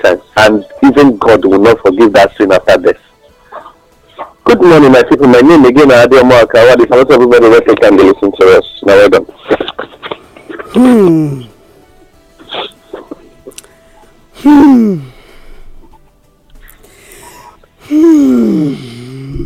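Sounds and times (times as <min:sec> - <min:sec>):
speech: 0:00.0 - 0:03.0, 0:04.5 - 0:09.6, 0:10.8 - 0:11.5, 0:14.4 - 0:15.1
person breathing out heavily: 0:16.6 - 0:19.4.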